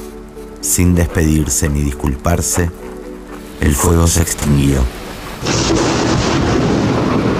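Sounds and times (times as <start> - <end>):
speech: 0.6 - 2.9, 3.6 - 6.1
dense hissing downpour of a rainstorm: 3.0 - 7.3
deep rolling thunder: 5.4 - 7.3.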